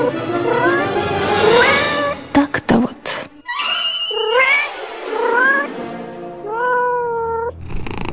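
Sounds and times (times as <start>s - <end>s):
cat yowling and meowing: 0.0s - 2.2s, 3.6s - 5.7s, 6.4s - 7.6s.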